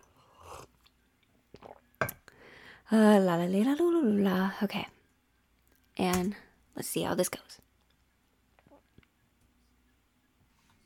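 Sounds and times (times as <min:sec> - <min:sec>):
person sipping water with a soft slurp: 0:01.5 - 0:01.9
speech: 0:02.9 - 0:04.9, 0:06.0 - 0:07.6.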